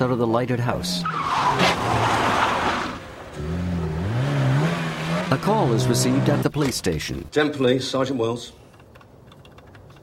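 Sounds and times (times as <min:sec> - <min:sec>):
speech: 0:00.0 - 0:02.2, 0:05.3 - 0:08.6
car tyres skidding: 0:01.0 - 0:06.5.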